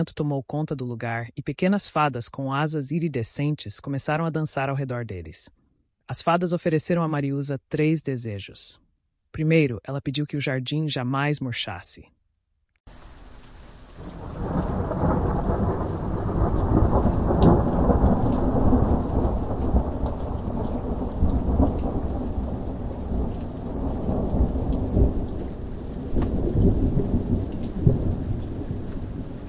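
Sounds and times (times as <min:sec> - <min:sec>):
speech: 0:00.0 - 0:12.2
heavy rain pouring from storm clouds: 0:12.9 - 0:29.4
deep rolling thunder rumbles: 0:13.9 - 0:29.4.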